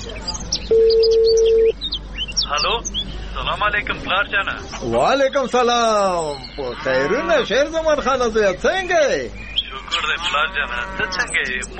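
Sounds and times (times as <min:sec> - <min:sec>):
faint noise: 0:00.0 - 0:11.7
electronic beep of a telephone being dialed: 0:00.3 - 0:01.8
speech: 0:02.5 - 0:11.7.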